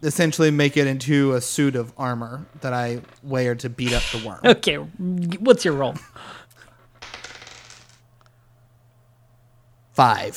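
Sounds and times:
speech: 0.0 - 6.4, 10.0 - 10.3
dice clattering across a hard tabletop during a tabletop game: 7.0 - 8.0.

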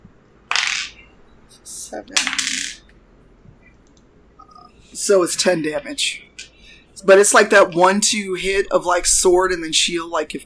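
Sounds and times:
dice clattering across a hard tabletop: 0.5 - 1.0, 2.1 - 2.9
speech: 1.5 - 2.8, 4.9 - 6.3, 7.0 - 10.4.

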